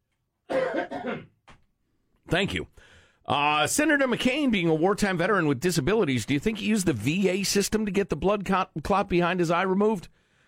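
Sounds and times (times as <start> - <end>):
person coughing: 0.5 - 1.4
speech: 2.3 - 10.2.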